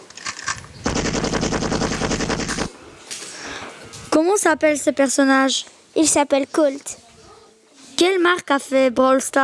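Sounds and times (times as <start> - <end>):
video game character machine-gun fire: 0.8 - 2.7
speech: 4.2 - 7.0, 8.0 - 9.4.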